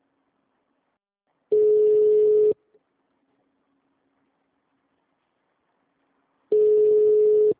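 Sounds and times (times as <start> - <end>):
telephone ringing tone of an unanswered transferred call: 1.5 - 2.6, 6.5 - 7.5.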